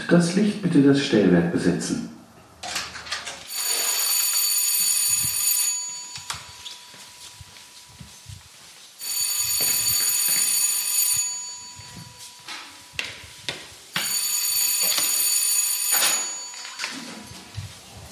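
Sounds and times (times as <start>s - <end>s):
speech: 0.1s - 2.2s
theatre call bell ringing the third call signal: 3.5s - 8.2s, 9.0s - 17.3s.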